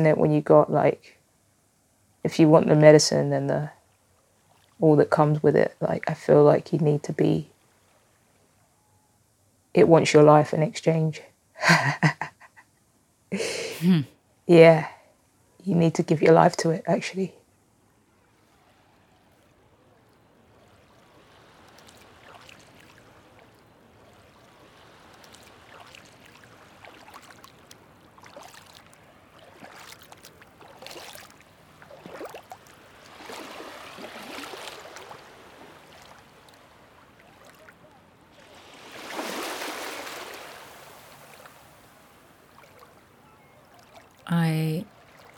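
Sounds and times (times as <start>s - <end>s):
speech: 0.0s - 1.2s, 2.2s - 3.8s, 4.8s - 7.5s, 9.8s - 12.3s, 13.3s - 15.0s, 15.6s - 17.4s
sea water lapping: 4.0s - 6.3s, 18.0s - 45.3s.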